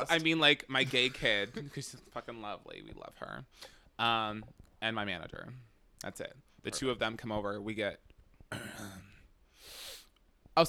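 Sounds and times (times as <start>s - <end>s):
speech: 0.0s - 9.0s
raspy throat clearing: 8.5s - 9.2s
soft exhale of breath: 9.6s - 10.1s.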